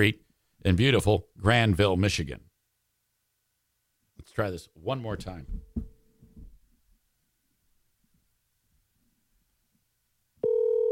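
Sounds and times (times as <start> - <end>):
speech: 0.0 - 2.5, 4.2 - 5.9
outgoing phone call electronic ring tone: 10.4 - 10.9.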